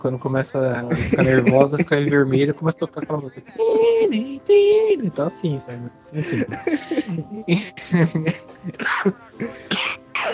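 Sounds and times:
speech: 0.0 - 9.5
laughter: 0.8 - 9.7
harsh throaty coughing fit: 0.9 - 4.0, 6.2 - 10.3
rough vocal sounds and breaths: 6.2 - 8.0, 9.3 - 9.8.

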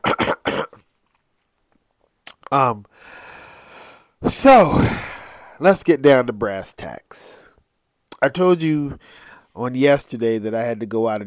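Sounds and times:
person clearing throat: 0.0 - 0.8
speech: 2.5 - 3.2, 4.2 - 7.5, 8.2 - 11.2
breathy exhale: 2.9 - 5.6, 9.0 - 9.5.

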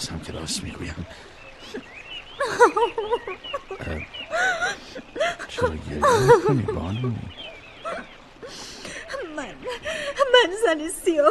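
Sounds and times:
speech: 0.0 - 8.6, 9.7 - 11.3
woman crying and whimpering: 1.6 - 6.8, 7.8 - 10.7
laughter: 1.6 - 10.6.

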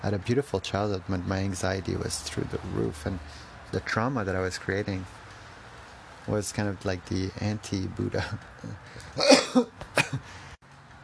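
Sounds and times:
speech: 0.0 - 5.2, 6.3 - 10.5
person coughing harshly close to the microphone: 9.2 - 10.3.

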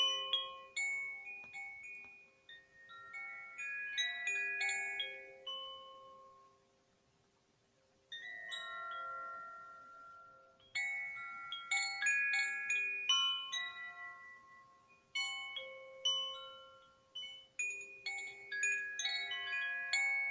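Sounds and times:
wind chimes ringing: 0.0 - 6.8, 8.1 - 20.2.

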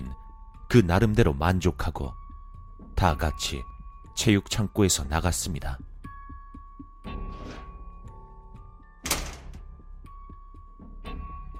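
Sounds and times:
speech: 0.7 - 2.2, 3.0 - 5.9
school gym storage room door swinging shut with a loud thunk: 9.0 - 9.7.

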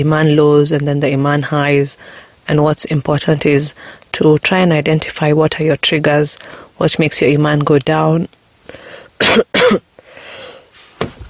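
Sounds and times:
speech: 0.0 - 9.9
person coughing: 9.2 - 9.8.

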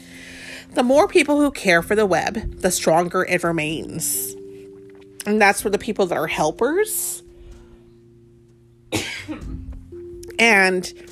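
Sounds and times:
speech: 0.7 - 4.4, 5.2 - 7.2, 10.4 - 11.1
person coughing: 8.9 - 9.7.

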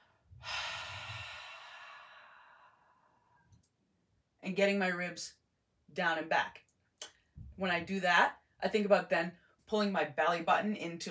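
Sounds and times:
forceful exhale while bracing with a lifting belt: 0.4 - 3.0
speech: 4.5 - 11.0.

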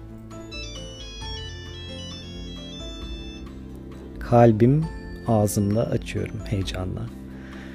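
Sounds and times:
mobile phone ringing with a tinkling electronic melody: 0.3 - 3.7
speech: 4.3 - 7.2.

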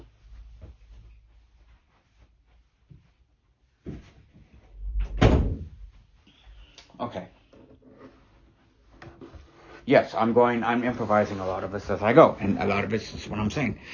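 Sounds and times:
door opening and closing: 4.8 - 5.9
speech: 9.9 - 13.9.

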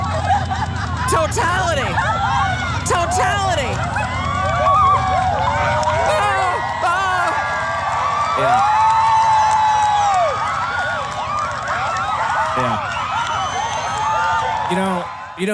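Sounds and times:
laughter: 0.0 - 7.6, 8.4 - 8.8, 12.6 - 12.9
whoops and yells: 0.0 - 15.4
large crowd cheering and shouting at solar eclipse totality: 0.0 - 15.5
speech: 1.2 - 2.3, 14.7 - 15.5.

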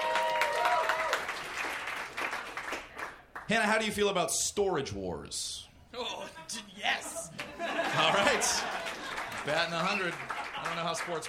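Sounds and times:
faint whoops: 0.0 - 1.2
audience clapping: 0.0 - 3.6, 7.4 - 11.2
speech: 3.5 - 7.3, 8.0 - 8.8, 9.4 - 11.2
laughter: 6.2 - 11.2.

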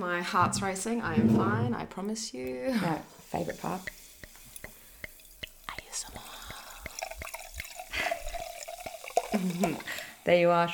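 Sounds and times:
speech: 0.0 - 4.0, 9.3 - 10.7
drink poured from bottle into glass: 3.2 - 10.3.

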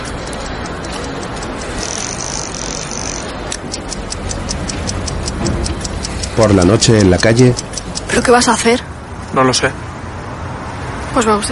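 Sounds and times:
clock ticking in a watchmaker's workshop: 0.0 - 8.9
speech: 6.4 - 9.8, 11.1 - 11.5.

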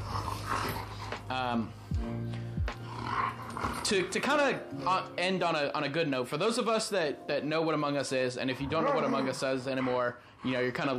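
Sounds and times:
dog whining growl and low grumbling: 0.0 - 1.2, 2.8 - 4.1, 8.7 - 10.2
speech: 1.3 - 2.5, 3.9 - 10.9.

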